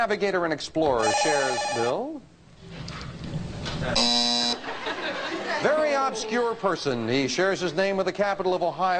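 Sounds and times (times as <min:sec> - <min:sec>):
speech: 0:00.0 - 0:02.8, 0:03.8 - 0:04.3, 0:05.6 - 0:08.9
game show buzzer: 0:01.0 - 0:02.0, 0:04.0 - 0:04.7
laughter: 0:04.6 - 0:07.1.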